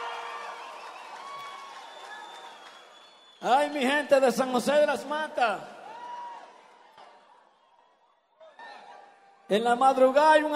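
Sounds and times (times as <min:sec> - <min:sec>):
crowd applauding: 0:00.0 - 0:03.8, 0:05.8 - 0:08.0
speech: 0:03.4 - 0:05.7, 0:09.5 - 0:10.5.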